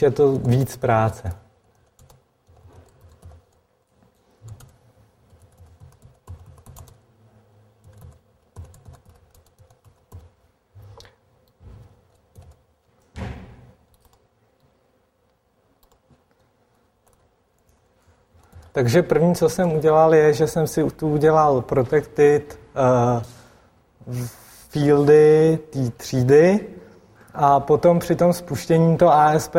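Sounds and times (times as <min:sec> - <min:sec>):
speech: 0:00.0 - 0:01.4, 0:18.8 - 0:23.4, 0:24.0 - 0:26.8, 0:27.4 - 0:29.5
computer keyboard keys clattering as someone types code: 0:00.3 - 0:03.7, 0:04.4 - 0:07.0, 0:07.8 - 0:10.4, 0:11.4 - 0:12.8, 0:13.8 - 0:14.3, 0:15.8 - 0:16.2, 0:17.0 - 0:17.7, 0:18.4 - 0:18.8.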